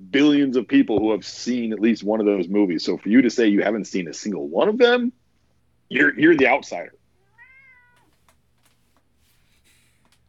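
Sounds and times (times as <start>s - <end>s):
low steady hum: 0.0s - 10.2s
speech: 0.1s - 5.2s, 5.9s - 7.0s
cat meowing: 7.2s - 8.2s
soft clicks and rustles: 7.9s - 10.2s.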